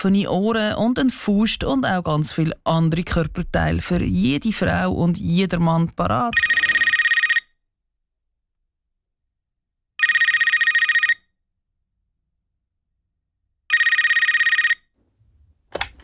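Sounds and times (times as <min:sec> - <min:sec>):
speech: 0:00.0 - 0:06.7
studio telephone ringing with an incoming call: 0:06.0 - 0:07.6, 0:10.0 - 0:11.3, 0:13.7 - 0:14.9.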